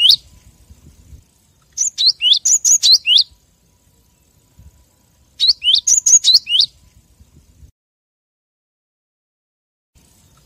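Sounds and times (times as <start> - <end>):
lovebird calls used as a lure for trapping birds: 0.0 - 0.4, 1.6 - 3.3, 5.4 - 6.8.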